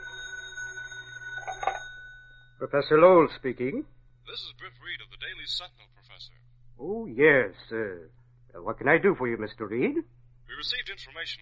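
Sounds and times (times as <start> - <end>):
telephone ringing: 0.0 - 2.6
speech: 2.6 - 11.4.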